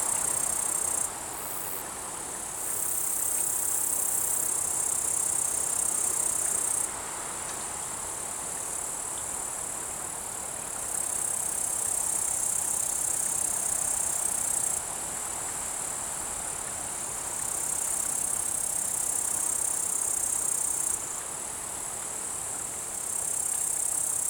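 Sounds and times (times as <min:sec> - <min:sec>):
bush-cricket stridulation on an alpine pasture: 0:00.0 - 0:06.9
chorus of other insects on an alpine pasture: 0:00.0 - 0:24.2.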